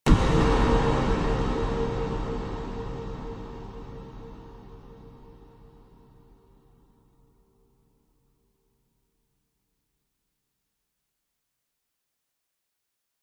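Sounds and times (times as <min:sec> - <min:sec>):
horror hit thud with long reverb: 0:00.1 - 0:05.5.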